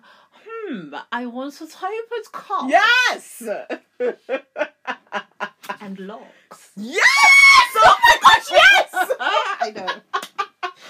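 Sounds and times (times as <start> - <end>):
speech: 0.7 - 10.2
excited screaming with shrill squeals: 6.8 - 9.6
laughter: 7.7 - 10.8.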